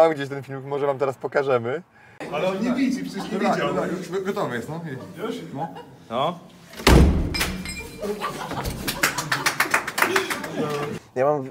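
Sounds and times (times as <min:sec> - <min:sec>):
speech: 0:00.0 - 0:07.2, 0:08.0 - 0:09.4, 0:10.1 - 0:11.4
laughter: 0:02.2 - 0:06.3, 0:07.8 - 0:11.0
old door being wrenched and forced open: 0:06.7 - 0:07.8
heavy thud: 0:06.8 - 0:07.4.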